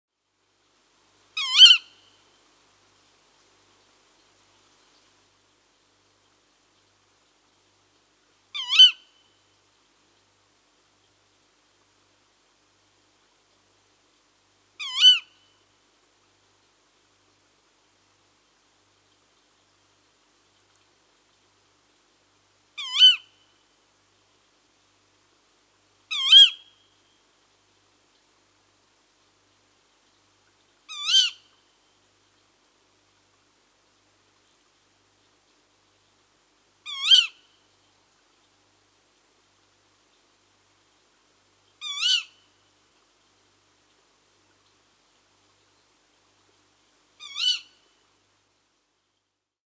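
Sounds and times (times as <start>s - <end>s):
female tawny owl calling: 1.4s - 2.0s, 8.6s - 9.1s, 14.8s - 15.3s, 22.8s - 23.3s, 26.1s - 26.7s, 30.9s - 31.5s, 36.9s - 37.4s, 41.8s - 42.4s, 47.2s - 47.8s.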